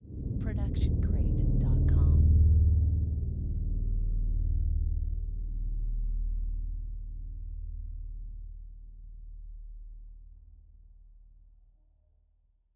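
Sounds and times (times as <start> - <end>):
creepy low grumble: 0.0 - 6.0.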